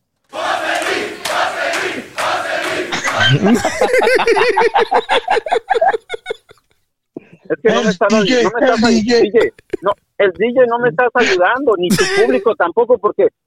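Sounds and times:
studio crowd shouting and cheering: 0.3s - 3.7s
laughter: 0.4s - 6.7s, 7.7s - 9.9s, 11.2s - 12.5s
speech: 3.3s - 6.0s, 7.6s - 13.4s.

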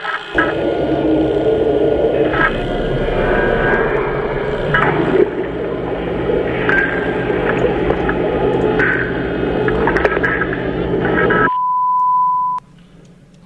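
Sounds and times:
loud dense static in video game raid teaser trailer audio: 0.0s - 11.5s
faint warbling tones: 0.3s - 11.5s
steady high-pitched beep: 11.5s - 12.6s.

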